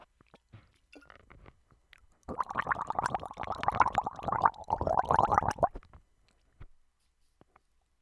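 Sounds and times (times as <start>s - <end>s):
faint clicks and sips: 1.9s - 5.8s
person gargling water: 2.3s - 5.8s.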